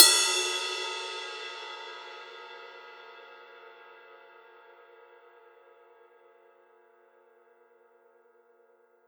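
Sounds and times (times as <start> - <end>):
ride cymbal: 0.0 - 3.5.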